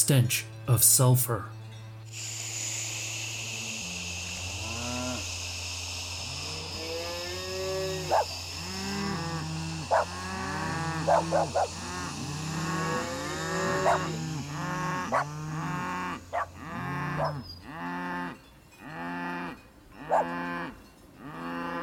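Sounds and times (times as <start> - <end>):
speech: 0.0 - 1.6
low drone: 0.0 - 17.7
cows bellowing in distress: 3.6 - 21.8.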